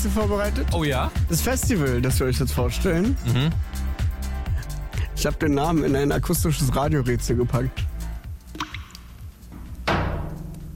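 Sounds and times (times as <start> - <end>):
speech: 0.0 - 3.9, 5.2 - 7.9
water dripping: 8.3 - 10.7
water splash: 8.6 - 9.2, 9.9 - 10.7.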